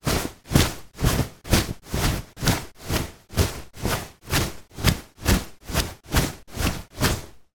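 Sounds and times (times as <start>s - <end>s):
shorts cloth rustling while walking: 0.0s - 7.4s.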